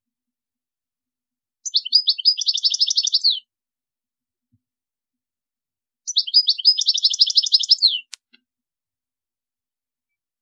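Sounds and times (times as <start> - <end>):
European goldfinch chattering twittering: 1.6 - 3.4, 6.1 - 8.1.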